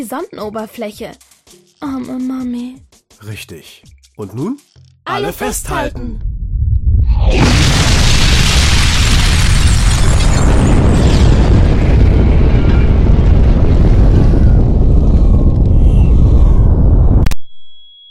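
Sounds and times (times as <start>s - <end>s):
speech: 0.0s - 6.3s
massive warhead detonation high above a city: 6.0s - 17.3s.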